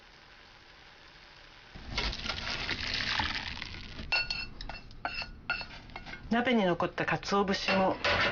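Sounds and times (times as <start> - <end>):
dashi broth pouring through a strainer into a bowl: 1.8 - 4.0
dishes and utensils clinking and clattering: 4.1 - 6.3, 7.6 - 8.2.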